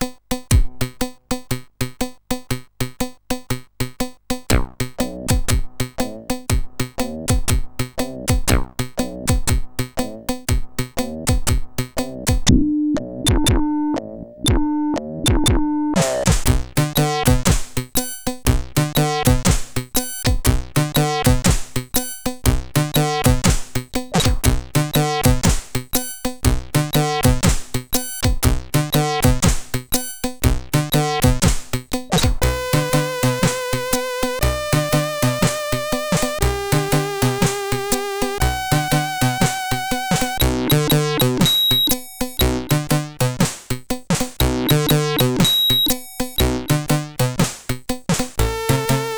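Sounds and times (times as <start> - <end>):
reggae music on a SID CSG8580 sound chip: 0.1 - 49.1.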